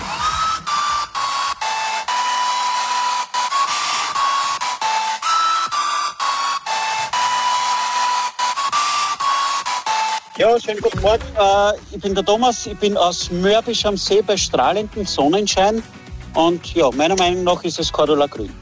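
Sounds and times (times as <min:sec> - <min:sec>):
hair dryer blowing: 0:00.0 - 0:05.1
popular hit song melody for a music quiz: 0:00.0 - 0:18.6
speech: 0:10.4 - 0:18.6.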